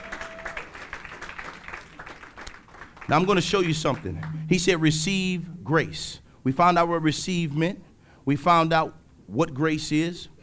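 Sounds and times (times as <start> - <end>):
church congregation clapping hands in praise: 0.0 - 5.0
speech: 3.1 - 10.3.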